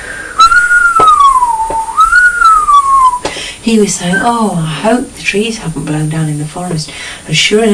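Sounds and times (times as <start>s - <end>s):
person whistling a wavering tone imitating the wind: 0.2s - 3.3s
speech: 3.7s - 7.7s.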